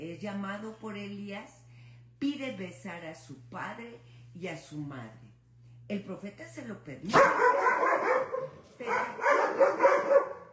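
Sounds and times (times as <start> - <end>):
speech: 0.0 - 1.6, 2.2 - 5.2, 5.9 - 10.2
dogs barking in quick loud bursts: 7.1 - 10.5.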